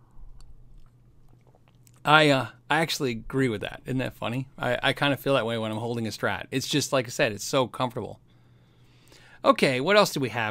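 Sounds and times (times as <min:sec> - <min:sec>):
steady low hum: 0:00.0 - 0:05.5
person sipping water with mouth clicks and swallow: 0:00.4 - 0:02.0
speech: 0:02.0 - 0:08.2, 0:09.4 - 0:10.4.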